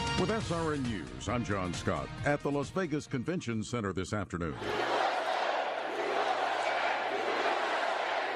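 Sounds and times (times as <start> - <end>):
speech: 0.2 - 4.9
large political rally crowd cheering and roaring: 4.6 - 8.3.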